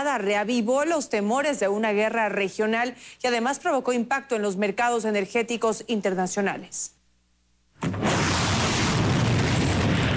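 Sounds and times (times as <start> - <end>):
speech: 0.0 - 7.0
explosion from a missile attack in the Middle East: 7.8 - 10.1.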